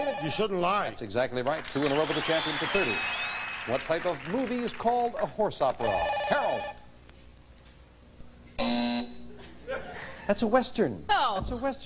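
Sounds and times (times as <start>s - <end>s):
quiz show answer buzzer: 0.0s - 0.7s, 5.8s - 6.8s, 8.6s - 9.3s
speech: 0.2s - 6.8s, 10.3s - 11.8s.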